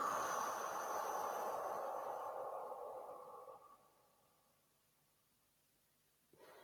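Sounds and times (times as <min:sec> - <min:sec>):
long slow exhale: 0:00.0 - 0:04.1.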